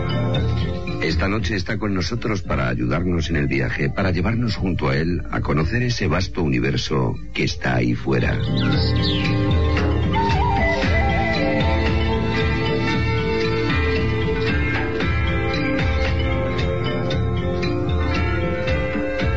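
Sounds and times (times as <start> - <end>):
small birds chirping and tweeting in a jungle: 0.0 - 1.3, 7.4 - 19.3
speech: 1.1 - 9.6.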